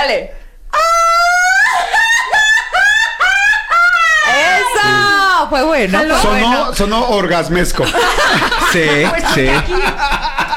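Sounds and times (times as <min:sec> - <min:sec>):
speech: 0:00.1 - 0:00.4, 0:05.5 - 0:10.1
laughter: 0:01.2 - 0:05.2, 0:07.8 - 0:10.5
traditional Mexican grito shout from one voice: 0:04.2 - 0:05.4.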